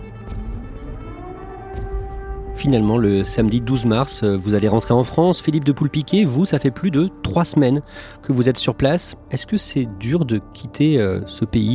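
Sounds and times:
air raid sirens wailing: 0.0s - 5.2s
speech: 2.6s - 11.7s.

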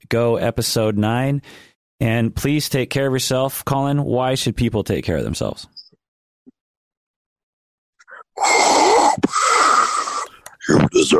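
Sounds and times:
speech: 0.1s - 5.8s, 10.7s - 11.1s
voice imitating heavy mechanical respirator breathing: 8.0s - 11.1s.

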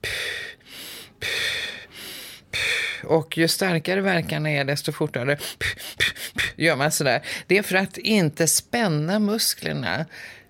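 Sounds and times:
demonstrated labor breathing, inhales through the nose and puffed-out exhales: 0.0s - 3.1s, 5.4s - 6.6s, 7.2s - 7.5s, 10.1s - 10.4s
speech: 3.1s - 10.4s.

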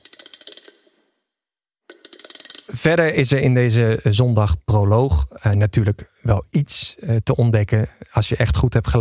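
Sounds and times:
rattling sound effect for anagrams: 0.0s - 0.9s
speech: 2.7s - 8.9s.

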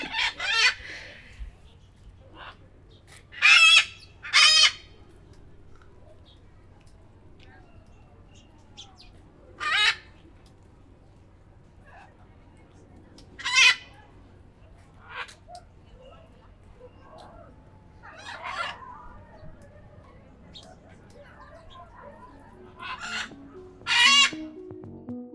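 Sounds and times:
parrots squawking in a zoo enclosure: 0.0s - 0.8s, 3.4s - 4.9s, 9.6s - 10.0s, 18.0s - 18.9s, 22.7s - 24.6s
low murmur: 0.0s - 25.0s.

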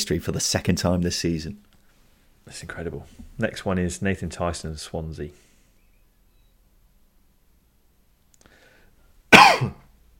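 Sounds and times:
speech: 0.1s - 1.7s, 2.5s - 5.4s
person coughing: 9.3s - 9.9s
raspy throat clearing: 9.3s - 9.9s.

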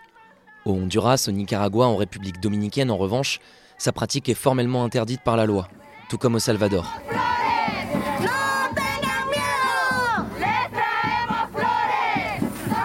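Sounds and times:
speech: 0.6s - 7.3s, 8.2s - 8.5s
large protest march crowd chanting in unison: 5.7s - 12.8s.

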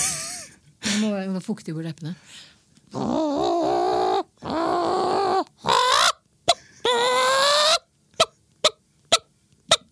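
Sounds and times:
speech: 1.0s - 3.8s
person imitating a clucking hen with squawks and clucks: 2.9s - 9.8s.

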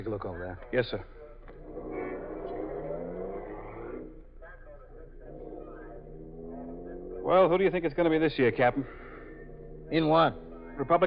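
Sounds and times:
speech: 0.0s - 1.2s, 7.2s - 9.0s, 9.9s - 11.0s
car engine revving and driving off: 1.6s - 4.2s, 5.2s - 11.0s.

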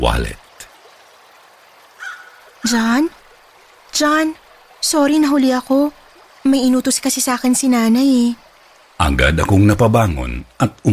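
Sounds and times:
speech: 0.0s - 0.4s, 2.6s - 3.2s, 4.0s - 8.4s, 9.0s - 10.9s
river flowing among large trees: 0.0s - 10.9s
bird-like call: 1.9s - 3.0s.

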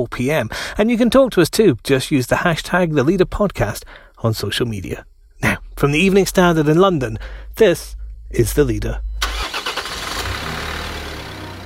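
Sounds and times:
speech: 0.0s - 9.1s
refrigerated truck engine cranking and idling: 8.6s - 11.6s.

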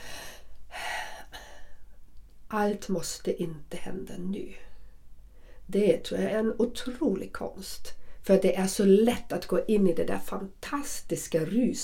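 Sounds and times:
person taking a breath: 0.0s - 2.0s, 5.3s - 5.7s
speech: 2.5s - 4.7s, 5.7s - 11.8s.

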